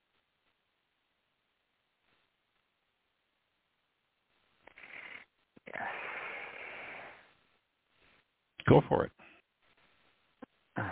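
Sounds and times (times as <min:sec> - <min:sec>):
slow deep breathing: 0:04.7 - 0:07.4
speech: 0:08.7 - 0:09.2.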